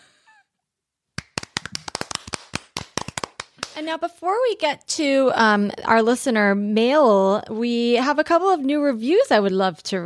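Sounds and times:
applause-style hand clapping: 0:01.2 - 0:03.9
speech: 0:03.8 - 0:10.0.

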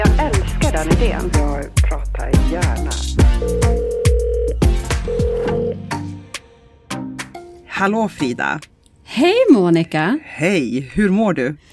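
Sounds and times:
speech: 0:00.8 - 0:02.7, 0:07.8 - 0:11.7
outgoing telephone call ringing tone: 0:03.4 - 0:05.8.

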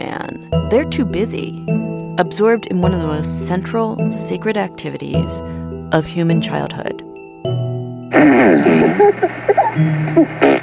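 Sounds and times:
speech: 0:00.0 - 0:07.0, 0:08.2 - 0:10.4
children blowing raspberries with their mouths among tall dark trees: 0:08.2 - 0:10.6.

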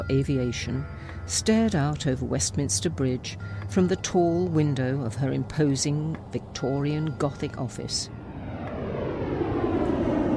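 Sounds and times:
speech: 0:00.0 - 0:08.2
passenger jet flying low overhead on approach to Heathrow: 0:02.6 - 0:10.3.

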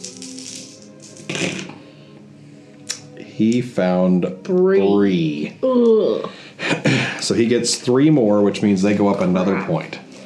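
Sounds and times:
tabletop game search dice rattling across a hard tabletop: 0:00.0 - 0:01.3
speech: 0:01.4 - 0:01.7, 0:03.4 - 0:10.0.

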